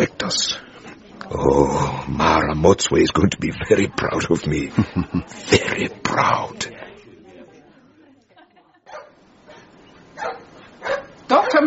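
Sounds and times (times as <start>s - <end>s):
speech: 0.3s - 0.6s, 1.3s - 6.7s
laughter: 4.3s - 6.1s, 8.1s - 9.7s
badly behaved dog barking: 8.9s - 11.6s.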